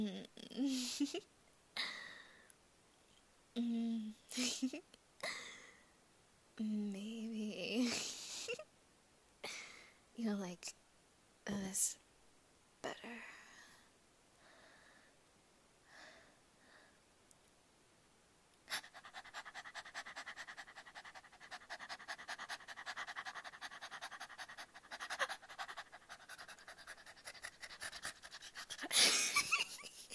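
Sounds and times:
speech: 0:00.0 - 0:01.9, 0:03.6 - 0:05.4, 0:06.6 - 0:08.7, 0:10.2 - 0:10.8, 0:11.5 - 0:12.0
person imitating a dog panting: 0:18.7 - 0:30.1.

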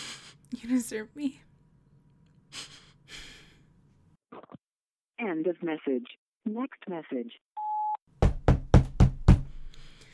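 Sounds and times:
speech: 0:00.6 - 0:01.5, 0:05.2 - 0:07.4
firm knocks on a door: 0:08.2 - 0:09.6.

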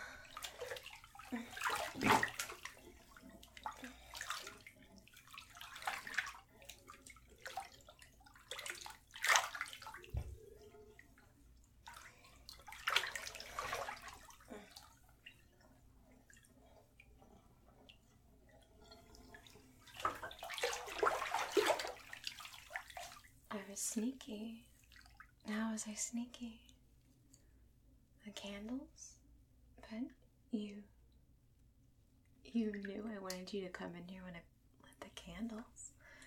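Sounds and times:
water dripping: 0:00.0 - 0:23.4
water splashing in a bathtub while rinsing off: 0:00.0 - 0:26.1, 0:32.4 - 0:34.0
speech: 0:23.9 - 0:24.7, 0:25.8 - 0:26.7, 0:28.4 - 0:29.2, 0:32.6 - 0:34.5, 0:35.4 - 0:35.8.

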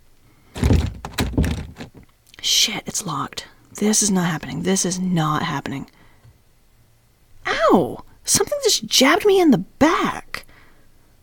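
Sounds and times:
door slamming shut: 0:00.6 - 0:02.0
speech: 0:02.4 - 0:06.0, 0:07.7 - 0:10.2.

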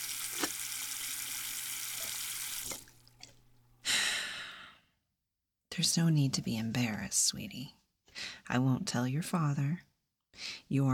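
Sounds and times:
running tap water while washing something: 0:00.0 - 0:03.3
speech: 0:05.8 - 0:07.8, 0:08.5 - 0:10.9.

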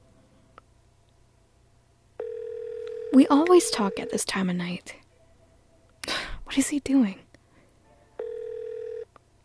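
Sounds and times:
ringback tone of an unanswered outgoing phone call: 0:02.2 - 0:04.2, 0:08.2 - 0:09.1
speech: 0:03.1 - 0:05.0, 0:06.6 - 0:07.2.

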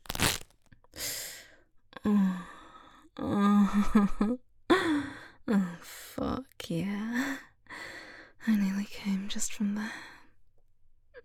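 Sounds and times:
fishnet stockings tearing: 0:00.0 - 0:00.5
speech: 0:02.0 - 0:02.5, 0:03.2 - 0:04.5, 0:05.5 - 0:07.4, 0:08.5 - 0:10.1.

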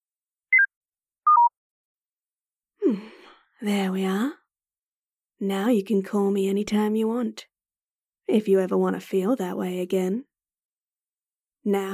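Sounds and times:
phone keypad dual-pitched tones: 0:01.3 - 0:01.5
speech: 0:02.9 - 0:04.4, 0:05.4 - 0:07.5, 0:08.3 - 0:10.3, 0:11.6 - 0:11.9.

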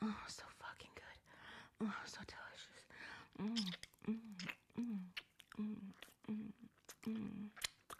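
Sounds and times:
speech: 0:01.8 - 0:02.7, 0:03.4 - 0:04.5
wet mouth sucking, slurping and drooling during oral sex: 0:03.4 - 0:07.9.

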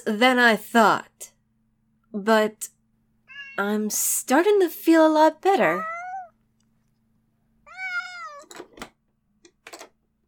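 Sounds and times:
speech: 0:00.0 - 0:01.3, 0:02.1 - 0:02.8, 0:03.6 - 0:05.9
cartoonish cat-like creature crying in a video game: 0:05.8 - 0:06.3, 0:07.7 - 0:08.4.

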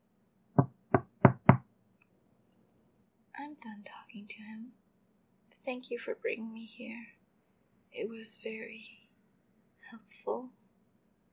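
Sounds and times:
firm knocks on a door: 0:00.6 - 0:01.6
speech: 0:03.5 - 0:04.8, 0:05.6 - 0:07.2, 0:07.9 - 0:09.0, 0:09.9 - 0:10.6.

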